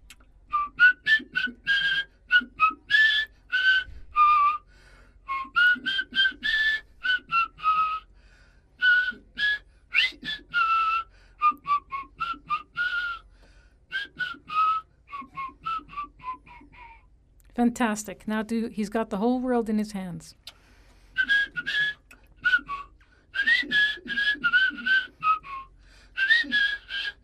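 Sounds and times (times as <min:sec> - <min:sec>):
person whistling a slow flowing melody alone in a studio: 0:00.5 - 0:08.1, 0:08.8 - 0:13.3, 0:13.9 - 0:17.0, 0:21.1 - 0:27.2
speech: 0:17.6 - 0:20.4.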